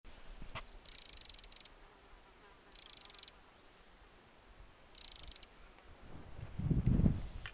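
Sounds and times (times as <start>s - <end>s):
Eurasian wren rattling call: 0.4s - 1.8s, 2.7s - 3.6s, 4.9s - 5.5s.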